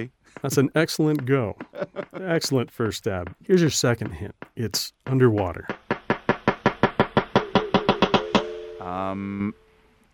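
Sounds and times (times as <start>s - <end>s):
speech: 0.0s - 5.8s, 8.8s - 9.6s
laughter: 1.6s - 2.6s
male walrus courting call with gong-like knocks: 2.8s - 9.1s.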